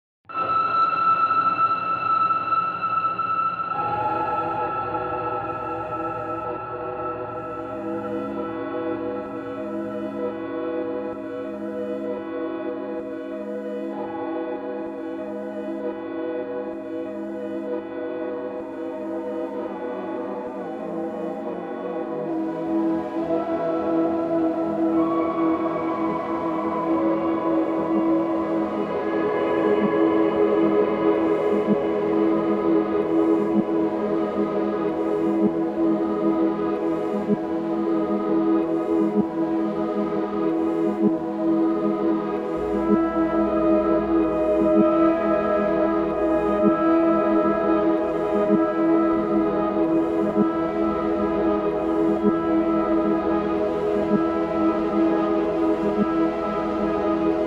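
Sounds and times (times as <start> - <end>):
ambience: 0.3 - 57.4.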